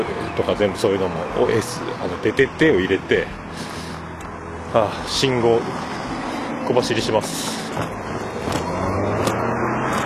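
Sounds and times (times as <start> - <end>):
speech: 0.0 - 3.7, 4.7 - 5.9, 6.7 - 8.1
car passing on road: 1.0 - 10.0
sharp clicks and scrapes: 7.4 - 10.0.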